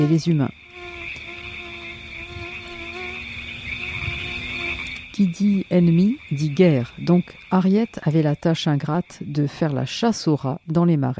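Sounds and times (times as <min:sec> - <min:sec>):
speech: 0:00.0 - 0:00.7, 0:05.2 - 0:11.1
mosquitoes buzzing in a marsh: 0:00.0 - 0:07.6.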